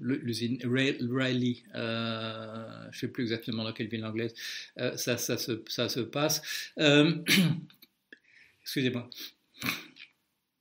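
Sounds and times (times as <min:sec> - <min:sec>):
speech: 0:00.1 - 0:07.8, 0:08.7 - 0:09.9
sneeze: 0:09.6 - 0:10.0.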